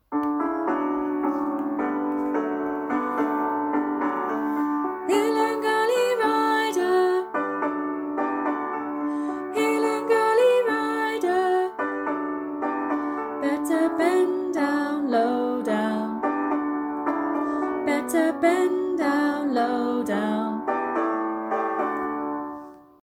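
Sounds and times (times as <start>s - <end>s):
piano playing a call: 0.0s - 23.0s
person singing a song with piano accompaniment: 0.3s - 7.8s, 9.0s - 12.1s, 13.3s - 16.4s, 17.6s - 20.8s.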